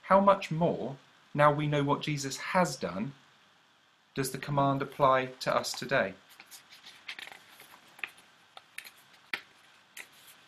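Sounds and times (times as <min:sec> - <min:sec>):
speech: 0:00.1 - 0:03.2, 0:04.2 - 0:06.6
sheets of paper rustling as they are pulled apart: 0:06.3 - 0:10.4.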